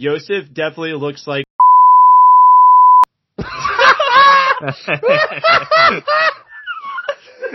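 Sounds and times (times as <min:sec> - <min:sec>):
speech: 0:00.0 - 0:01.4, 0:04.6 - 0:06.4
loud steady censor bleep: 0:01.6 - 0:03.1
people laughing and exclaiming excitedly: 0:03.4 - 0:07.5.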